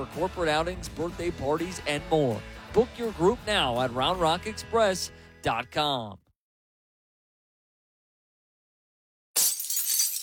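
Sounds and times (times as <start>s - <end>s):
speech: 0.1s - 6.2s
windshield glass cracking and shattering: 9.4s - 10.2s.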